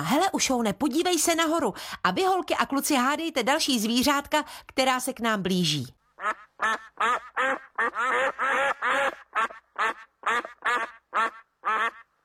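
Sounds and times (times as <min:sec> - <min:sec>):
speech: 0:00.1 - 0:12.0
wild ducks quacking with loud nasal calls: 0:06.2 - 0:12.1.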